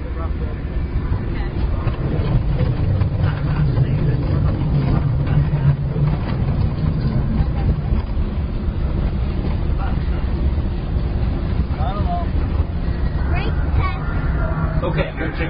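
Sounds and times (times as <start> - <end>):
wind buffeting: 0.0 - 15.4
test vehicle engine and road noise on a rough road: 1.1 - 15.4.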